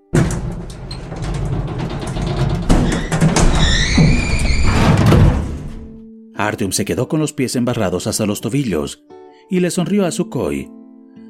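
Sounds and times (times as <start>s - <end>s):
heavy iron shutter grinding and creaking as it rises: 0.0s - 6.0s
speech: 6.4s - 10.8s.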